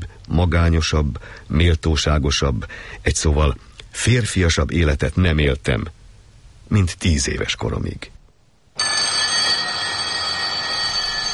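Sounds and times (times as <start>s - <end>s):
speech: 0.4s - 6.0s, 6.7s - 8.2s
wake-up alarm bells ringing: 8.8s - 11.3s.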